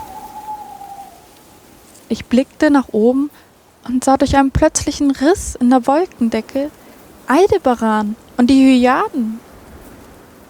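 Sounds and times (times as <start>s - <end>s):
owl hooting mournfully: 0.0s - 2.4s
night ambience: 0.0s - 9.4s
speech: 2.1s - 9.4s.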